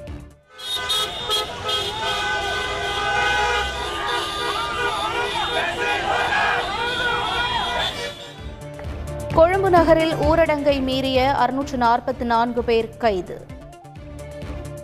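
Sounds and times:
vehicle horns honking in a street protest in Sri Lanka: 0.5s - 8.8s
traffic rumbling: 0.5s - 12.2s
crowd murmur at a street protest in Sri Lanka: 2.0s - 8.4s
speech: 9.7s - 13.5s.

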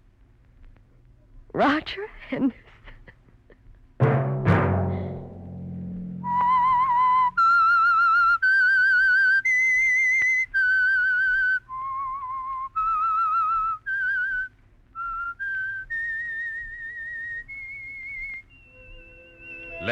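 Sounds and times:
speech: 1.6s - 2.6s
resonant struck sound: 4.0s - 7.4s
solo whistled theme melody: 6.2s - 19.9s.

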